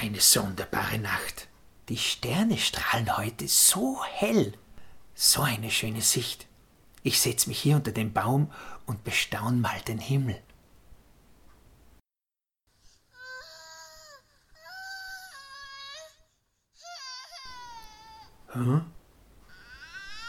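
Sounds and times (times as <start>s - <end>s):
speech: 0.0s - 4.6s, 5.2s - 10.5s, 18.5s - 19.0s
baby crying at night in a hut or stable: 12.9s - 18.5s, 19.4s - 20.2s.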